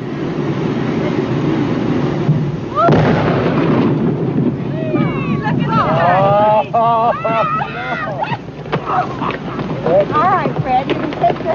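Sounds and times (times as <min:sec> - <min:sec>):
loud sustained rumble: 0:00.0 - 0:11.5
dynamite blast blowing up a beached whale carcass: 0:00.4 - 0:06.5
laughter: 0:05.6 - 0:10.3.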